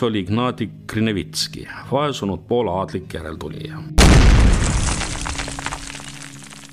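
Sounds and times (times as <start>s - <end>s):
speech: 0.0s - 4.8s
bomb explosion: 4.0s - 5.8s.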